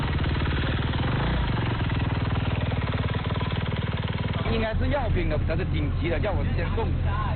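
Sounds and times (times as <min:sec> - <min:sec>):
motorcycle engine running: 0:00.0 - 0:07.3
speech: 0:04.6 - 0:07.3.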